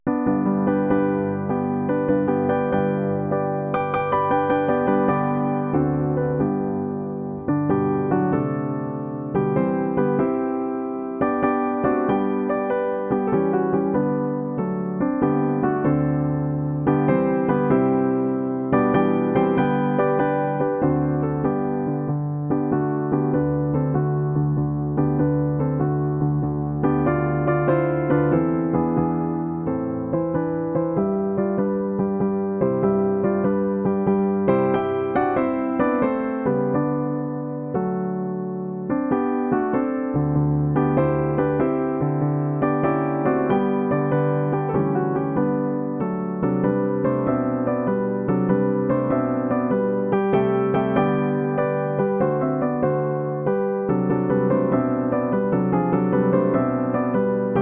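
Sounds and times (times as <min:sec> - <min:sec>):
classical piece: 0:00.0 - 0:57.5.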